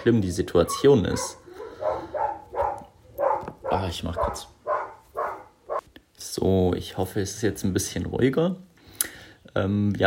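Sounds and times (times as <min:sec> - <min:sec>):
speech: 0:00.0 - 0:01.4, 0:03.7 - 0:04.6, 0:06.2 - 0:10.0
dog barking in the background: 0:00.6 - 0:05.8.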